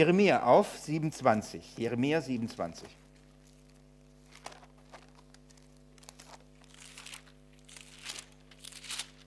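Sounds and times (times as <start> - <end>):
speech: 0.0 - 3.0
low steady hum: 0.0 - 9.2
pages of a Bible being flipped: 3.1 - 9.2.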